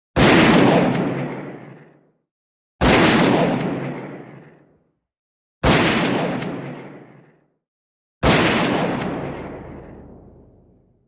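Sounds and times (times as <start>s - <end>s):
12 gauge shotgun shots: 0.2s - 2.0s, 2.8s - 4.7s, 5.6s - 7.4s, 8.2s - 10.7s.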